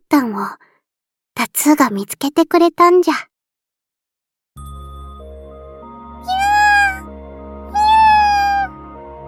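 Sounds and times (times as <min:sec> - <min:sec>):
speech: 0:00.1 - 0:00.7, 0:01.4 - 0:03.3
black cat meowing: 0:06.2 - 0:07.0, 0:07.7 - 0:08.7.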